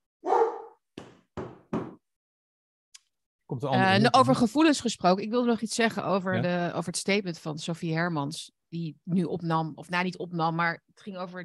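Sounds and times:
dog barking: 0:00.2 - 0:00.8
speech: 0:03.5 - 0:11.4.

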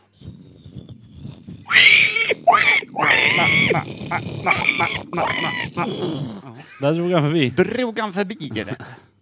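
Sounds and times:
person vocally imitating a pig squealing and grunting: 0:01.6 - 0:06.9
speech: 0:03.7 - 0:09.1.

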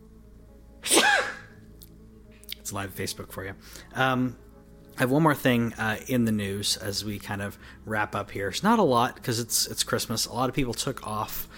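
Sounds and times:
sneeze: 0:00.8 - 0:01.5
speech: 0:02.7 - 0:04.4, 0:05.0 - 0:11.5.

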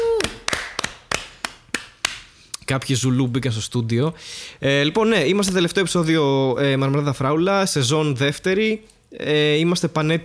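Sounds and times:
hand claps: 0:00.0 - 0:02.9
speech: 0:02.7 - 0:10.2.

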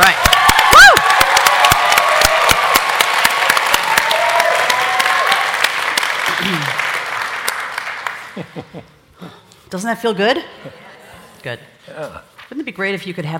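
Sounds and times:
crowd whooping: 0:00.0 - 0:05.7
high-pitched cheers: 0:00.0 - 0:05.8
big crowd applauding: 0:00.0 - 0:08.6
speech: 0:09.8 - 0:10.8, 0:11.4 - 0:13.3.

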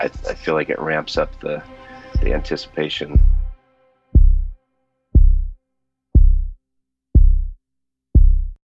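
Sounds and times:
speech: 0:00.0 - 0:03.4
heartbeat-like pulse of heavy low thuds in a music score: 0:02.2 - 0:02.6, 0:03.2 - 0:03.6, 0:04.2 - 0:04.6, 0:05.2 - 0:05.6, 0:06.2 - 0:06.6, 0:07.2 - 0:07.6, 0:08.2 - 0:08.6.

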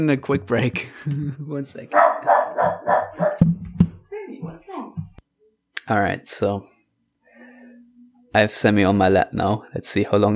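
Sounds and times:
speech: 0:00.0 - 0:03.5, 0:05.9 - 0:06.8, 0:08.4 - 0:10.3
dog yapping on a couch: 0:01.9 - 0:03.4
abrupt knocks: 0:02.6 - 0:04.1, 0:05.0 - 0:05.2.

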